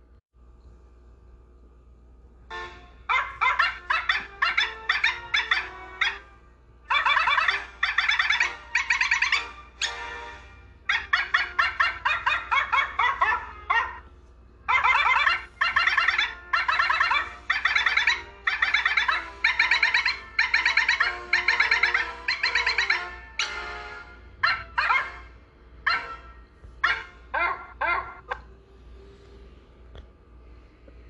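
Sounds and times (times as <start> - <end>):
dog barking a national anthem melody: 3.0 - 6.3, 6.9 - 10.0, 10.9 - 14.1, 14.7 - 23.6, 24.4 - 28.5.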